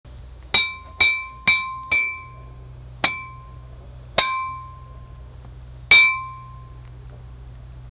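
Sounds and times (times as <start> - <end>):
metal pipe clanging as it hits the ground: 0.6 - 2.4, 3.0 - 3.6, 4.2 - 4.9, 5.9 - 6.7.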